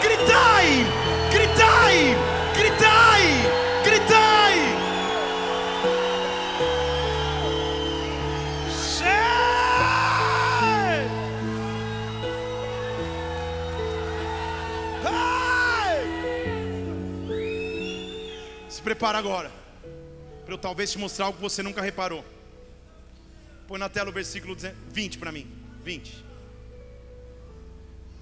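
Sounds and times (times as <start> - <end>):
sustained keyboard music: 0.0 - 18.7
audience shouting and cheering: 0.0 - 19.0
speech: 19.0 - 19.6, 20.5 - 22.4, 23.7 - 26.3.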